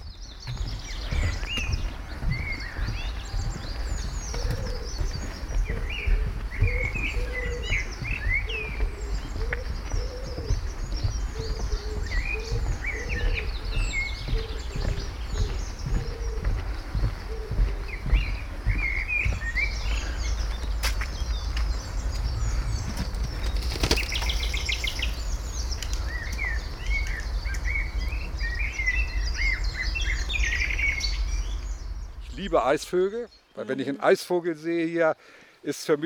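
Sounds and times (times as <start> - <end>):
steady low rumble of water or traffic beneath a river bridge: 0.0 - 32.6
bird calls and chirps on a river bridge: 0.0 - 36.0
pigeon-like cooing: 5.7 - 7.8, 8.5 - 10.6, 11.4 - 17.9
speech: 32.5 - 36.0.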